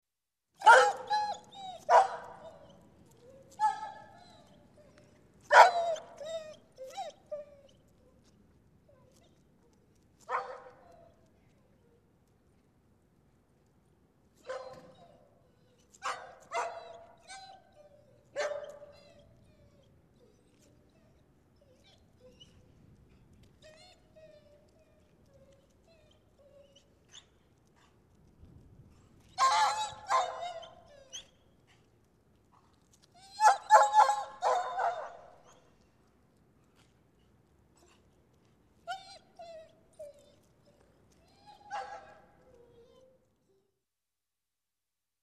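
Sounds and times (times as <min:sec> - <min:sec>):
two dogs barking in backyard: 0:00.6 - 0:02.6, 0:03.6 - 0:04.1, 0:05.5 - 0:06.0, 0:10.3 - 0:10.8, 0:16.0 - 0:17.0, 0:18.4 - 0:18.9, 0:29.4 - 0:30.7, 0:33.4 - 0:35.3, 0:41.7 - 0:42.2
two dogs whining in backyard: 0:00.6 - 0:08.1, 0:14.5 - 0:22.8, 0:23.4 - 0:27.3, 0:29.3 - 0:31.8, 0:32.8 - 0:35.8, 0:38.8 - 0:43.3.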